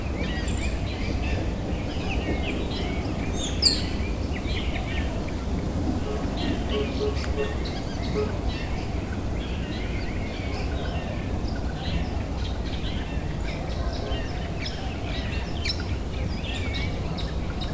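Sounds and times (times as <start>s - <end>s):
many spring birds chirping and trilling: 0.1s - 17.7s.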